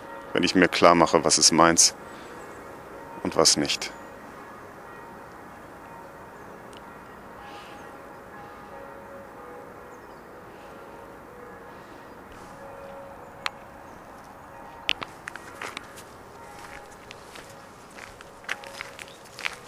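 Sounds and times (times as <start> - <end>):
church bells ringing in the morning: 0.0 - 19.6
speech: 0.3 - 2.2, 3.2 - 4.0.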